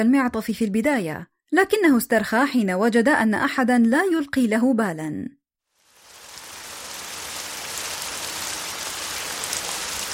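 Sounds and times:
speech: 0.0s - 5.4s
heavy rain pouring: 5.7s - 10.1s.

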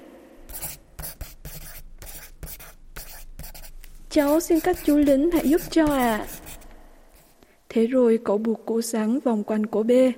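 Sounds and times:
pencil writing on paper: 0.4s - 7.4s
speech: 4.1s - 6.4s, 7.7s - 10.1s.

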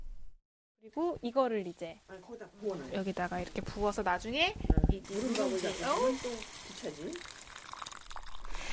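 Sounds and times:
speech: 0.8s - 7.4s
warm water sizzling in hot cast-iron pot: 5.0s - 8.7s.

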